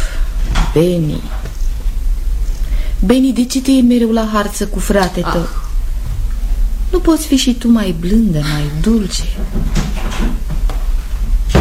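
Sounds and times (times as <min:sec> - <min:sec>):
low rumbling background: 0:00.0 - 0:11.5
speech: 0:00.7 - 0:01.4, 0:03.0 - 0:05.6, 0:07.0 - 0:10.5
doors slammed shut in a home: 0:09.2 - 0:10.7.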